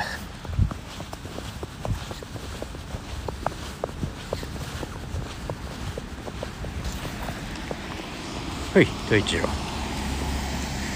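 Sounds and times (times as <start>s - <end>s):
footsteps crunching through fresh snow in a park: 0.0s - 10.9s
wind noise: 0.0s - 10.9s
speech: 8.8s - 9.7s.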